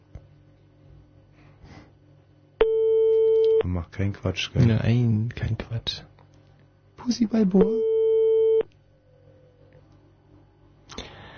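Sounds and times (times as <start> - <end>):
faint low hum: 0.0 - 11.3
telephone line tone on an unanswered call: 2.6 - 3.6, 7.6 - 8.7
speech: 3.8 - 6.1, 7.0 - 7.9.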